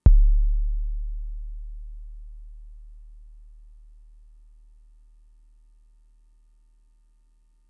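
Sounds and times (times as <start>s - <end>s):
drum machine kick drum: 0.0s - 3.8s.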